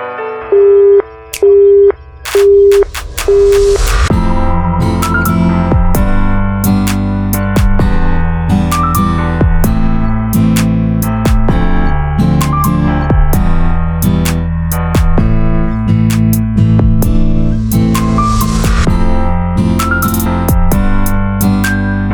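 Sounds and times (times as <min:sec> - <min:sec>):
telephone busy signal beeps: 0:00.6 - 0:02.8
dense sustained tones: 0:02.0 - 0:22.1.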